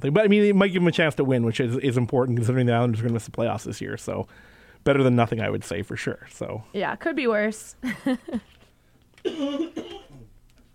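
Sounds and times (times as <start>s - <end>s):
speech: 0.0s - 8.6s, 9.2s - 10.0s
quiet breathing: 4.2s - 4.9s
throaty cough: 9.2s - 10.3s.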